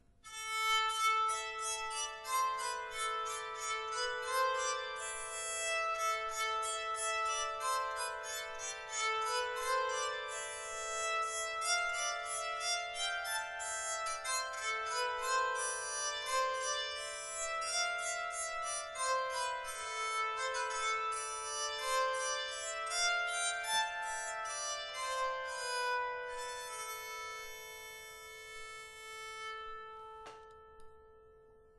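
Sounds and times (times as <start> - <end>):
tenor bowed psaltery: 0.3 - 31.2.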